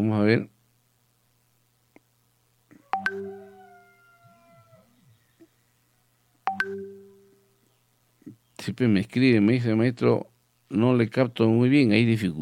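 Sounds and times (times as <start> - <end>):
speech: 0.0 - 0.6, 8.6 - 12.3
faint chirps: 2.7 - 8.7
ringing tone of an outgoing telephone call: 2.9 - 3.8, 6.5 - 7.4.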